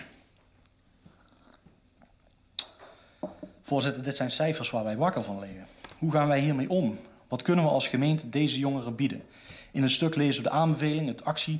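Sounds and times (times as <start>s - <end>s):
person sipping a drink: 0.1s - 3.4s
speech: 3.7s - 11.5s.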